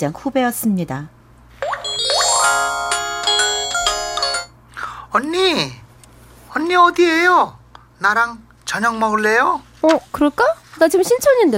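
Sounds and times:
speech: 0.0s - 1.2s, 5.2s - 5.8s, 6.5s - 11.5s
bright electronic phone ringtone with chiming melody: 1.6s - 4.6s.

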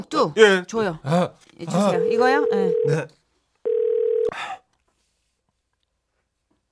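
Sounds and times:
speech: 0.0s - 3.2s, 4.3s - 4.6s
telephone tone: 1.8s - 3.0s, 3.7s - 4.3s
phone number dialing: 1.9s - 2.9s, 3.7s - 4.3s.

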